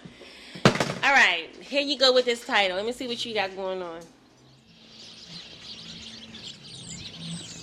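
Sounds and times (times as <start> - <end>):
speech: 1.1 - 4.2
low steady hum of city traffic and engine drone: 1.4 - 7.6
many small birds chirping and twittering in a sidewalk tree: 2.6 - 7.6.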